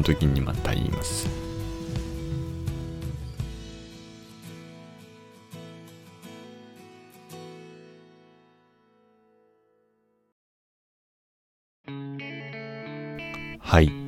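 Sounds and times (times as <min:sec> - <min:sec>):
speech: 0:00.0 - 0:01.5, 0:13.7 - 0:14.0
bright musical passage: 0:00.0 - 0:08.0, 0:13.2 - 0:14.0
closing theme music with effected distorted guitar tones: 0:00.0 - 0:09.1, 0:11.9 - 0:14.0.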